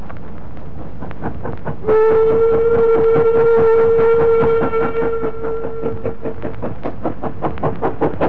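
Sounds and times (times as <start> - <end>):
steam goods train chuffing slowly up an incline: 0.3 - 8.2
steam goods train whistle: 1.8 - 6.4.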